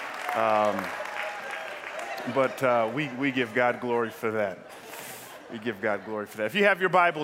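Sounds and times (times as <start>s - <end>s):
audience applauding: 0.0s - 4.1s
speech: 0.4s - 1.0s, 2.2s - 4.8s, 5.5s - 7.2s.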